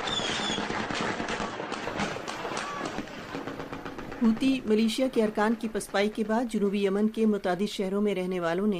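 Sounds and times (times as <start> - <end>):
gunfire at oil tanks at a refinery in Aden Yemen: 0.0 - 4.2
noisy outdoor din: 0.0 - 8.2
speech: 4.2 - 8.7.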